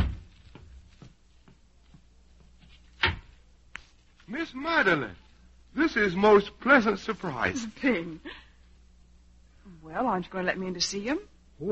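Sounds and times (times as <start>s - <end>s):
soft footsteps: 0.0s - 5.3s
speech: 4.3s - 8.4s, 9.9s - 11.6s.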